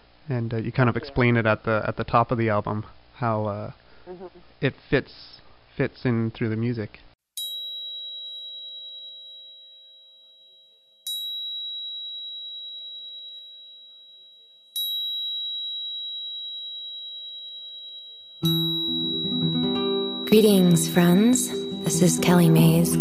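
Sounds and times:
speech: 0:00.3 - 0:07.1, 0:20.3 - 0:22.9
two tuning forks ringing at 528 and 639 hertz: 0:07.4 - 0:22.9.

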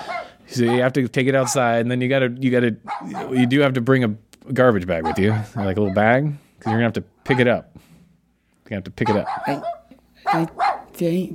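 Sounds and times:
puppy barking: 0:00.0 - 0:01.8, 0:02.8 - 0:03.7, 0:04.9 - 0:07.6, 0:09.0 - 0:11.0
speech: 0:00.6 - 0:07.9, 0:08.7 - 0:11.3.

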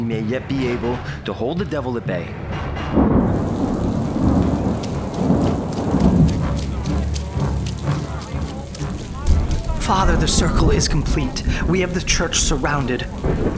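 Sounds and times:
speech: 0:00.1 - 0:03.1, 0:09.9 - 0:13.5
heavy rain downpour: 0:03.0 - 0:13.5.

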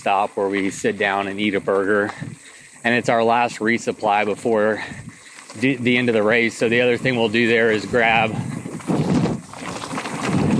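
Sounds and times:
speech: 0:00.0 - 0:08.5
wind buffeting a microphone on hilly ground in Arkansas: 0:07.0 - 0:10.5.

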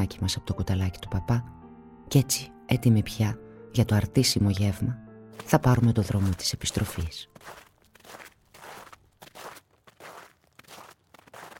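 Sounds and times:
speech: 0:00.0 - 0:08.2
footsteps crunching in snow: 0:05.4 - 0:11.5.

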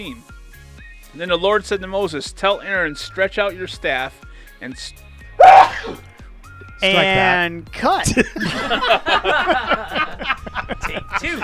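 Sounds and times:
speech: 0:00.0 - 0:00.3, 0:01.1 - 0:06.1, 0:06.8 - 0:11.4
loud sneeze: 0:05.4 - 0:06.1
laughter: 0:06.8 - 0:11.4.

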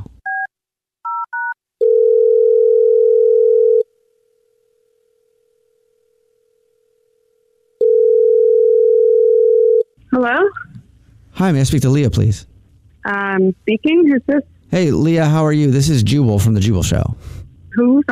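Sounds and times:
steady telephone dial tone: 0:01.1 - 0:03.9, 0:07.8 - 0:09.9
speech: 0:11.4 - 0:18.1.

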